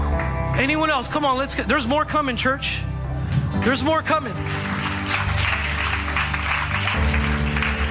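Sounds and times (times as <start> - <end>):
audience clapping: 0.0 - 1.1, 4.2 - 7.8
speech: 0.6 - 4.7.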